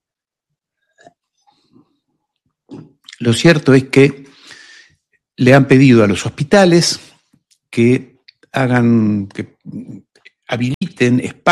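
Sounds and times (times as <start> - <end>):
person gulping and swallowing tea: 2.7 - 3.2
speech: 3.2 - 4.4, 5.4 - 7.1, 7.7 - 11.5.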